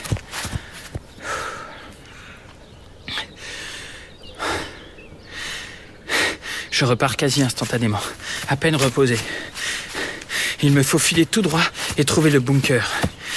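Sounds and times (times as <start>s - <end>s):
person panting after running into a forest: 0.3s - 2.5s, 3.2s - 6.7s, 8.0s - 10.7s, 11.6s - 12.0s, 12.9s - 13.3s
speech: 6.8s - 9.6s, 10.6s - 13.1s.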